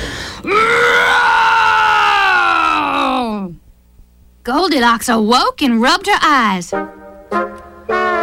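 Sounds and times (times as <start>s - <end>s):
human voice imitating a bear's growl: 0.4s - 3.6s
speech: 4.5s - 7.6s.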